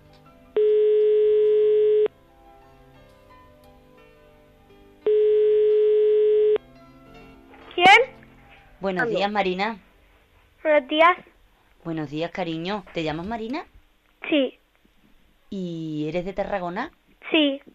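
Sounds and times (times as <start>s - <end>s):
outgoing phone call ringback tone beeps: 0.6s - 2.1s, 5.1s - 6.6s
speech: 8.8s - 9.9s, 10.7s - 13.7s, 14.3s - 14.6s, 15.5s - 17.7s.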